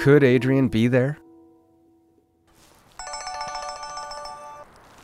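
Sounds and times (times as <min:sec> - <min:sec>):
speech: 0:00.1 - 0:01.2
cell phone ringtone with bright electronic melody: 0:03.0 - 0:04.8.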